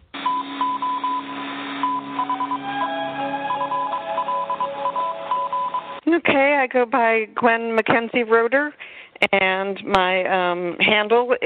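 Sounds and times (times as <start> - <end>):
hissy radio-like background: 0.0 - 6.0
Morse code beeps: 0.2 - 6.0
speech: 6.1 - 11.4.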